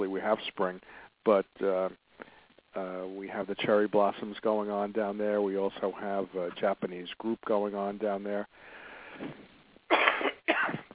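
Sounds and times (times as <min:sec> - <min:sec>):
speech: 0:00.0 - 0:02.0, 0:02.8 - 0:10.4
person coughing in a studio: 0:09.2 - 0:10.9.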